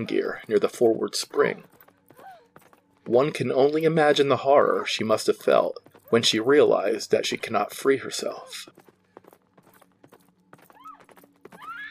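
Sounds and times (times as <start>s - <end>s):
speech: 0.0s - 1.8s, 3.1s - 8.8s
horse hooves pounding while galloping: 0.0s - 11.9s
shrill horse whinny: 10.7s - 11.9s.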